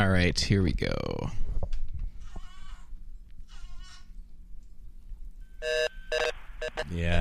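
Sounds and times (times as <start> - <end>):
speech: 0.1 - 1.4, 6.9 - 7.2
telephone busy signal: 5.6 - 6.9.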